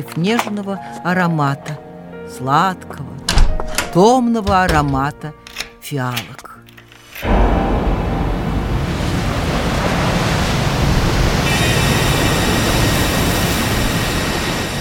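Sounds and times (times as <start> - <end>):
speech: 0.0 - 3.2, 3.9 - 6.4
gusting wind: 7.2 - 14.7
heavy stormy surf waves crashing: 7.2 - 14.7.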